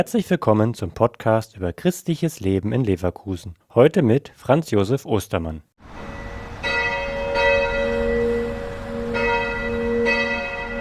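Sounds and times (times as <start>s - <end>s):
speech: 0.0s - 6.1s
church bells ringing in a steady overlapping peal: 5.9s - 10.8s.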